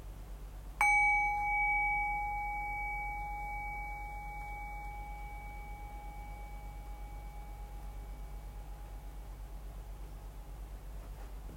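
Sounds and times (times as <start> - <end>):
single bell strike: 0.8 - 9.2.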